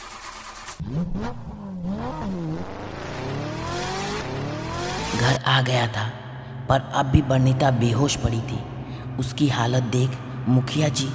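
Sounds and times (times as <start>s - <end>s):
car engine starting and revving as the car drives off: 0.0s - 5.4s
speech: 0.8s - 2.8s, 5.1s - 11.1s.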